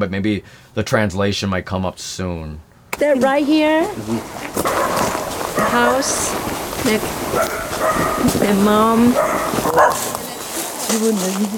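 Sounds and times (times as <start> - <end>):
speech: 0.0 - 5.0, 5.6 - 10.2, 10.9 - 11.5
two dogs barking: 4.2 - 10.4
dog sharp high yelp: 4.6 - 6.5, 7.2 - 10.3.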